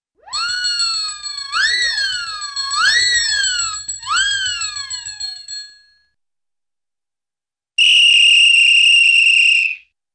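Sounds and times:
cartoon whistles: 0.2 - 5.3, 7.8 - 9.9
cartoon bell: 0.3 - 6.2.

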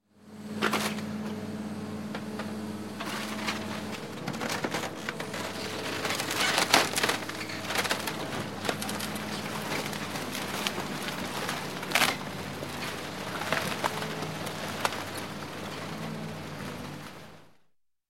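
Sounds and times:
bulldozer running over: 0.3 - 17.6
wood and metal crushing under a bulldozer: 0.6 - 1.1, 3.0 - 17.3.

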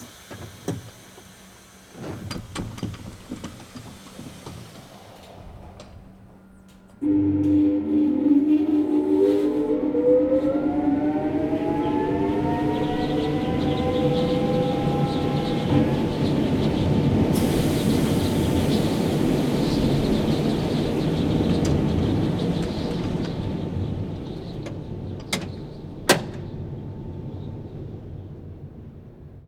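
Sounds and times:
tram door closing: 0.0 - 29.4.

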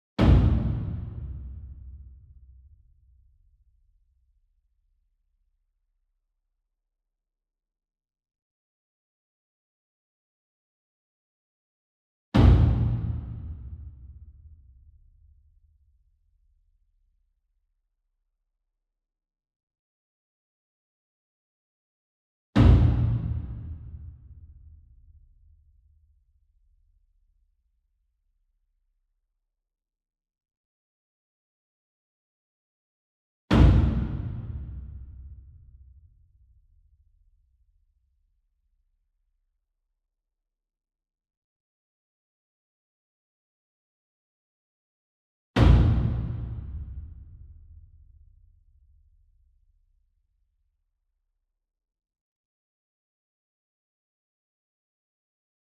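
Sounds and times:
60 inch taiko drum hit with soft beater from far: 0.2 - 1.8, 12.4 - 13.8, 22.6 - 23.9, 33.5 - 35.1, 45.6 - 47.3.

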